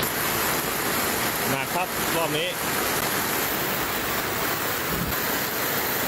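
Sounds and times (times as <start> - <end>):
rushing flash-flood water overflowing a creek: 0.0 - 6.0
speech: 1.8 - 2.9.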